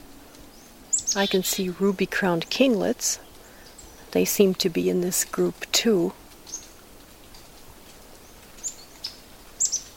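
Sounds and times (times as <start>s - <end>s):
soft outdoor hiss: 0.0s - 9.9s
yellow-rumped warbler chip calls: 0.5s - 4.3s, 8.2s - 9.9s
speech: 1.2s - 3.3s, 4.1s - 6.2s.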